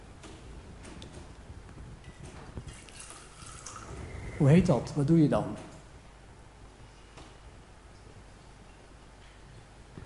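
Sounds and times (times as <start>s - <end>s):
drips: 2.7s - 4.0s
wine trickling into a cup: 2.7s - 4.0s
speech: 4.4s - 5.7s.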